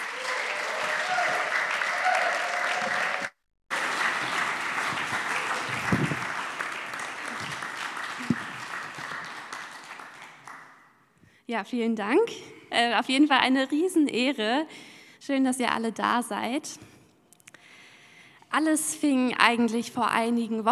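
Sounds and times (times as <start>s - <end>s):
crowd applause: 0.0s - 11.0s
speech: 11.5s - 16.9s, 18.6s - 20.6s.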